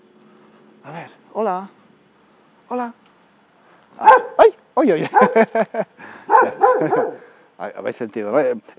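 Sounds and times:
speech: 0.8s - 1.8s, 2.7s - 3.0s, 4.0s - 8.7s
dog barking: 4.0s - 4.5s, 5.1s - 5.4s, 6.3s - 7.3s
laughter: 5.0s - 7.2s.

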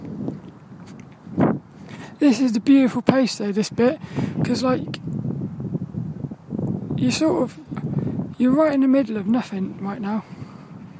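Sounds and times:
blustery wind buffeting the microphone outdoors: 0.0s - 10.9s
speech: 2.2s - 5.2s, 7.0s - 7.8s, 8.4s - 10.4s.

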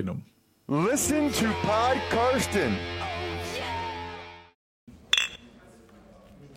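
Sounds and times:
speech: 0.0s - 3.1s
glasses clinking in a toast in a stadium press room: 5.1s - 5.6s.

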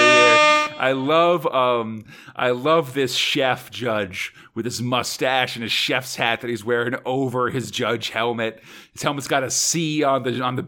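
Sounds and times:
loud air horn blasts: 0.0s - 1.2s
speech: 0.8s - 10.6s.

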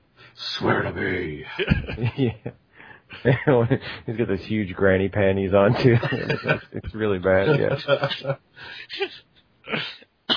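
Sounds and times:
speech: 0.4s - 10.3s
laughter: 1.0s - 4.0s, 5.6s - 9.2s
short raspy coughs: 9.0s - 10.3s.

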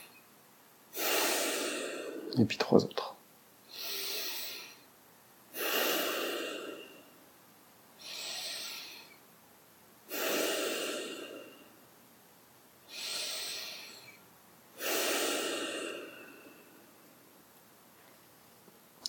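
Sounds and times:
deep slow breathing during a guided breathing exercise: 0.9s - 2.4s, 5.5s - 7.2s, 8.0s - 9.2s, 10.1s - 11.9s, 12.9s - 14.2s, 14.8s - 17.3s
speech: 2.4s - 3.1s.

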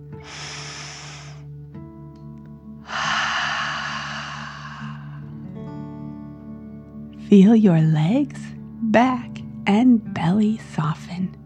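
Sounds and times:
deep inhale: 0.0s - 1.5s, 2.8s - 5.5s
forceful exhale through the mouth with a breathy hiss: 0.1s - 1.5s, 2.8s - 5.3s
speech: 7.3s - 11.4s.

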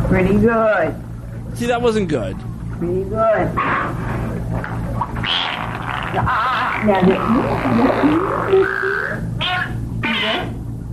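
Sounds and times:
low steady hum: 0.0s - 10.9s
speech: 0.1s - 9.0s
dolphin warbling vocalizations mimicking human speech: 5.2s - 10.6s.

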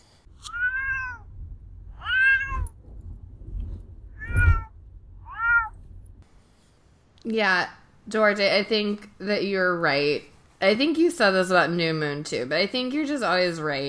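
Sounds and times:
low rumble: 0.0s - 6.7s
domestic cat meowing: 0.4s - 2.8s, 4.1s - 5.8s
speech: 7.3s - 13.8s.

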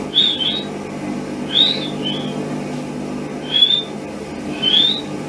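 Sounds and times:
short high-pitched whistles in a bedroom: 0.1s - 0.7s, 1.4s - 2.4s, 3.4s - 5.1s.

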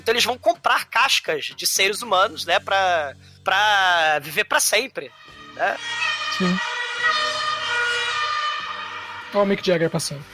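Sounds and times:
speech: 0.0s - 7.2s, 9.3s - 10.3s
ambulance siren wailing: 5.1s - 10.3s.

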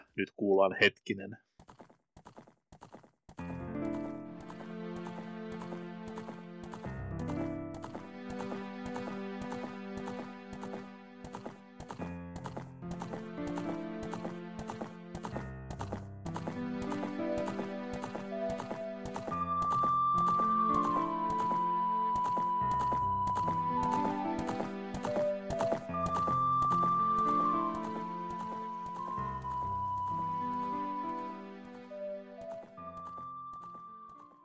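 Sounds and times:
speech: 0.2s - 1.5s
video game horse hooves galloping: 1.6s - 21.6s, 22.2s - 30.6s, 32.4s - 34.3s
bright synthesized video game melody: 17.1s - 34.4s.

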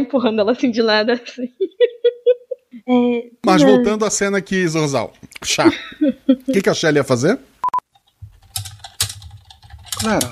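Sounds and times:
speech: 0.0s - 1.7s, 2.9s - 7.5s, 10.0s - 10.3s
laughter: 1.5s - 2.7s, 3.5s - 4.1s, 5.6s - 6.6s
electronic keypad beeps: 7.6s - 7.8s.

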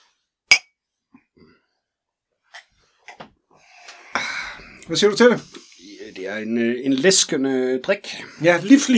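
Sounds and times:
glasses clinking in a toast: 0.5s - 0.7s
speech: 4.9s - 5.6s, 6.2s - 8.9s.

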